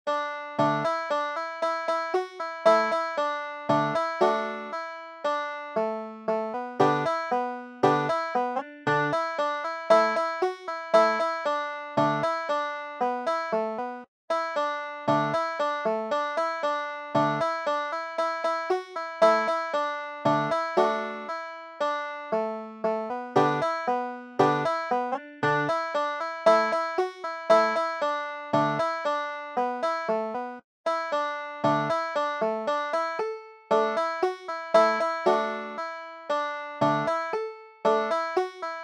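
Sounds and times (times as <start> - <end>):
banjo: 0.1 - 38.8.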